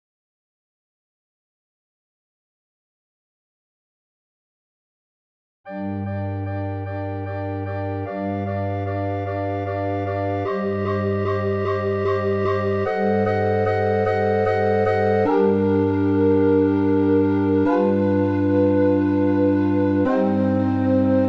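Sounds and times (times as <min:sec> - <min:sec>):
organ: 0:05.7 - 0:21.2.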